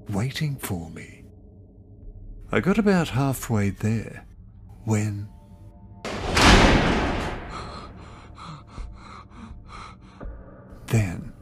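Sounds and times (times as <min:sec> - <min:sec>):
speech: 0:00.1 - 0:01.2, 0:02.5 - 0:05.3
prison cell door slamming shut on a cell block: 0:06.1 - 0:08.1
low thuds: 0:06.1 - 0:08.2.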